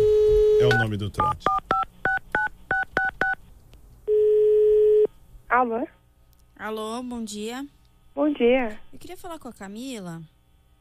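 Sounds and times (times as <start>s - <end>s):
loud steady continuous telephone line tone: 0.0s - 0.9s, 4.1s - 5.1s
touch-tone telephone keypad being dialed: 0.7s - 3.4s
speech: 0.8s - 1.7s, 5.6s - 6.0s, 6.6s - 10.4s.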